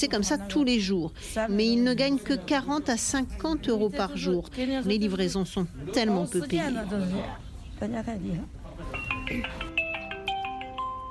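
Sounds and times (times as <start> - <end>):
speech: 0.0 - 8.6, 9.3 - 9.6
WeChat voice call ringback tone: 8.9 - 11.0.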